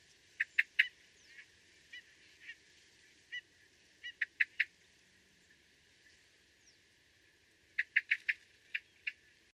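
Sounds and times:
Eurasian blackbird Turdus merula giving sharp chink calls: 0.4 - 2.6, 3.3 - 4.7, 7.8 - 9.3.

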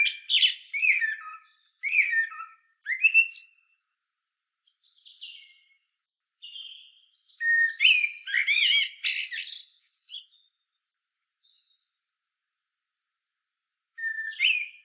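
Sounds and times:
common blackbird Turdus merula singing fluted warbling phrases: 0.0 - 3.7, 4.7 - 11.9, 14.0 - 14.8.

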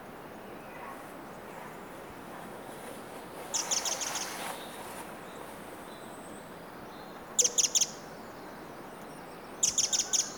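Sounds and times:
faint steady background hiss: 0.0 - 10.3
Eurasian wren Troglodytes troglodytes giving hard ticking calls: 3.5 - 4.2, 7.4 - 8.0, 9.0 - 10.3.

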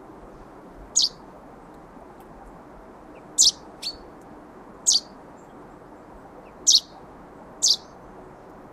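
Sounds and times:
soft steady background hiss: 0.0 - 8.7
common chaffinch calling, Fringilla coelebs: 0.9 - 1.2, 3.1 - 4.1, 4.8 - 5.6, 6.4 - 8.0.

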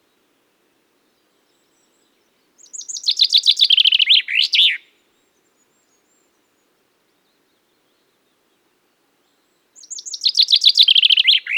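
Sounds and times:
common chaffinch Fringilla coelebs singing: 2.6 - 4.8, 9.8 - 11.5.

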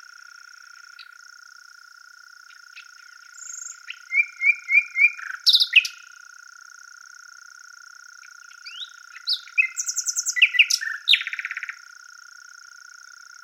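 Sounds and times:
common nightingale Luscinia megarhynchos song with varied phrases: 0.0 - 1.2, 2.3 - 6.3, 8.1 - 12.0, 12.6 - 13.4
high-pitched background hiss: 0.0 - 13.4.

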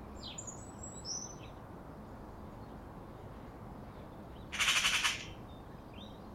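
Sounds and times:
Eurasian magpie Pica pica giving a harsh rattle: 4.5 - 5.4.

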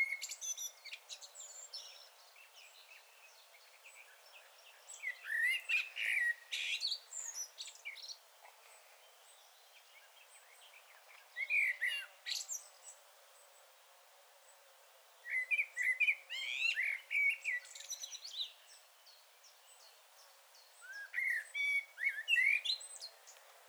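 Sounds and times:
common blackbird Turdus merula singing warbled and chirping phrases: 0.0 - 8.2, 11.4 - 12.7, 15.2 - 20.0, 20.6 - 23.3.

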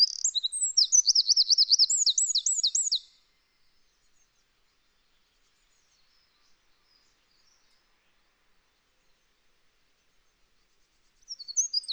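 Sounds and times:
Eurasian wren Troglodytes troglodytes singing: 0.0 - 3.2, 11.3 - 11.9.

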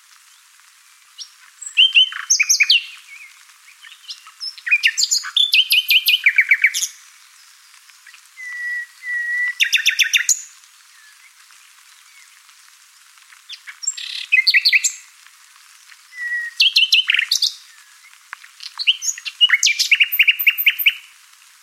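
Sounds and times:
common nightingale singing: 1.2 - 7.4, 8.0 - 11.4, 13.5 - 15.1, 16.1 - 21.1.

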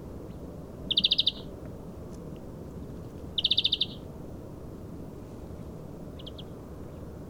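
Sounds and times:
steady low background noise: 0.0 - 7.2
European greenfinch Chloris chloris giving chattering trills: 0.9 - 1.5, 3.4 - 4.0.

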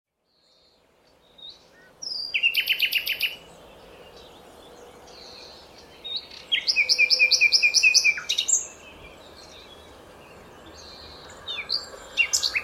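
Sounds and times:
common nightingale (Luscinia megarhynchos) song: 0.2 - 12.6.

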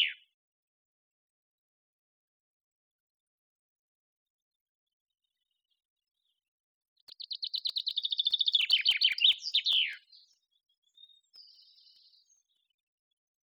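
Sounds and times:
faint high chirps: 0.0 - 0.3, 7.1 - 12.7
common chaffinch Fringilla coelebs singing: 0.0 - 0.4, 7.0 - 12.8.

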